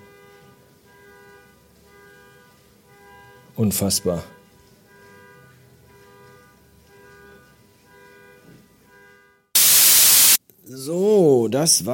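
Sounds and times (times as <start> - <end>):
speech: 3.6 - 4.4, 11.5 - 11.9
car alarm blaring outside: 9.6 - 10.4.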